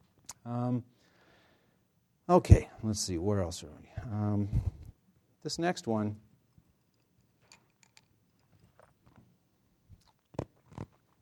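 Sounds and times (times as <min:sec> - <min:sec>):
speech: 0:00.4 - 0:01.0, 0:02.3 - 0:04.8, 0:05.4 - 0:06.3
ice being chewed: 0:08.4 - 0:09.3, 0:10.0 - 0:11.2.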